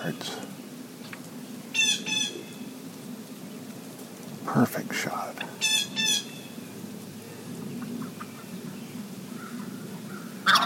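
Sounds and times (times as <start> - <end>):
speech: 0.0 - 0.5, 4.5 - 5.8
steady low outdoor rumble: 0.0 - 10.6
wild turkey hen giving short raspy calls: 1.7 - 2.7, 5.4 - 6.6, 7.6 - 10.6.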